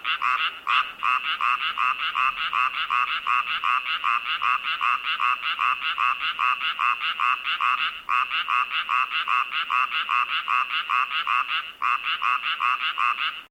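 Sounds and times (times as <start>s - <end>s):
frog croaking in an unused swimming pool: 0.0s - 13.4s.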